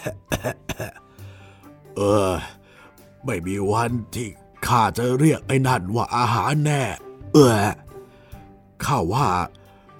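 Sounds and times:
speech: 0.0 - 0.6, 2.0 - 2.6, 3.2 - 7.8, 8.8 - 9.6
person imitating a giant turtle retching after swallowing a plastic bag: 0.0 - 1.0, 2.0 - 2.6.

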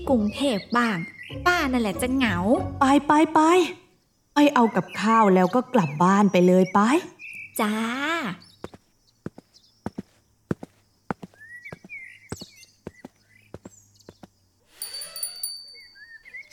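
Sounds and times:
speech: 0.0 - 3.8, 4.4 - 8.5
birds chirping: 0.0 - 16.5
footsteps clopping across the floor: 8.7 - 14.4
shop front door bell ringing as a customer leaves: 14.8 - 16.2.

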